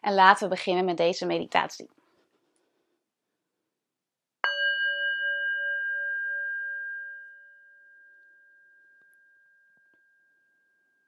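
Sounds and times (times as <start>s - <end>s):
speech: 0.0s - 2.0s
singing bowl struck as a meditation start signal: 4.4s - 11.0s.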